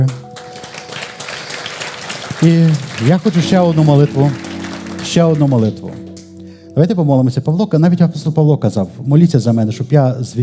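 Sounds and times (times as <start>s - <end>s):
speech: 0.0s - 0.2s, 2.4s - 4.5s, 5.1s - 6.1s, 6.8s - 10.4s
crowd applauding: 0.0s - 6.3s.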